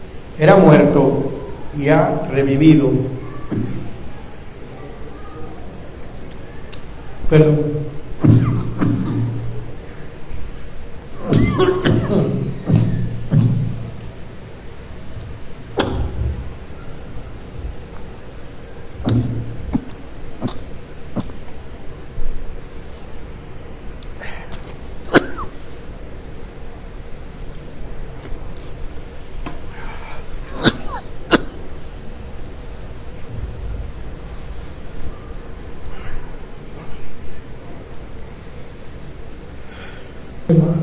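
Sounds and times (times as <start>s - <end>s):
quiet hum: 0.0s - 40.8s
speech: 0.4s - 3.8s, 7.3s - 8.4s
person clearing throat: 8.2s - 9.4s, 11.2s - 13.6s, 19.8s - 21.4s, 25.1s - 25.6s, 30.5s - 31.6s
person coughing: 8.2s - 9.4s, 11.2s - 13.0s, 25.1s - 25.6s, 30.5s - 31.6s.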